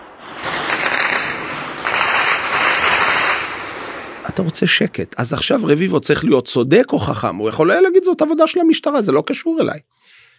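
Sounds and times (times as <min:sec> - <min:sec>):
rapid crackling gunfire bursts: 0:00.4 - 0:03.9
speech: 0:04.4 - 0:10.0.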